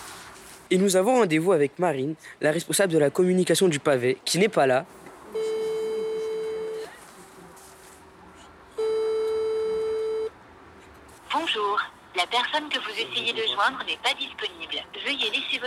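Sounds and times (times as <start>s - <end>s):
speech: 0.7s - 5.1s
long steady telephone ringback tones: 5.3s - 6.9s, 8.8s - 10.3s
recorded voice speaking over a phone line: 12.3s - 15.6s.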